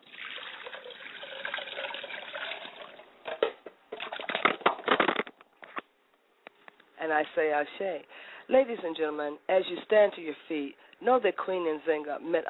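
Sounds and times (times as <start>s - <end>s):
water poured as a libation and used to wash hands and face: 0.0s - 4.6s
speech: 7.0s - 12.4s.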